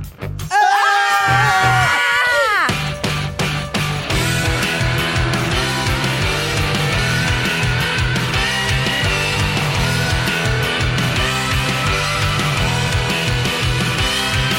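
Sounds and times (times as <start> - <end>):
several people screaming together: 0.5 - 2.8
upbeat music with a thumping beat: 2.7 - 14.5.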